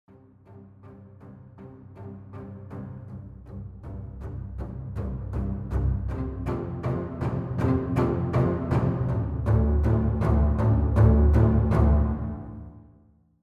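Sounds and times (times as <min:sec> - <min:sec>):
string ensemble playing: 0:00.1 - 0:12.8.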